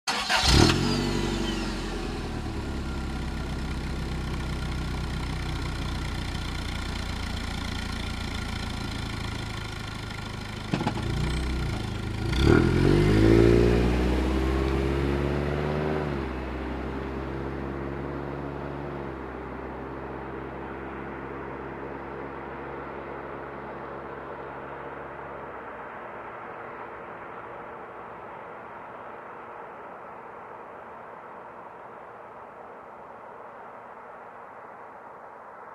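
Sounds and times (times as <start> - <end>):
car starting and driving away: 0.1 - 29.8.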